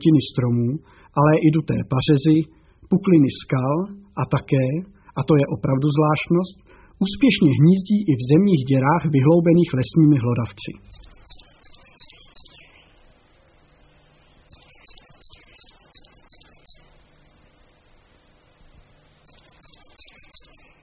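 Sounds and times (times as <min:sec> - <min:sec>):
speech: 0:00.0 - 0:11.2
coal tit singing rapid high two-note phrases: 0:10.9 - 0:13.0, 0:14.5 - 0:17.0, 0:19.2 - 0:20.8.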